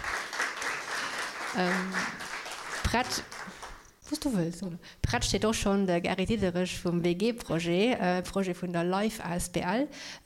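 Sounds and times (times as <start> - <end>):
audience applause at a talk on cooperative housing: 0.0 - 3.9
speech: 1.5 - 2.2, 2.9 - 3.4, 4.1 - 10.2.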